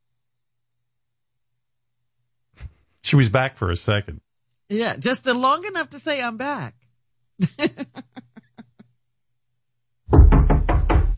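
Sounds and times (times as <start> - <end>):
speech: 3.0 - 6.8, 7.4 - 8.0
people laughing: 7.4 - 8.8
hollow knocking on a door: 10.1 - 11.1.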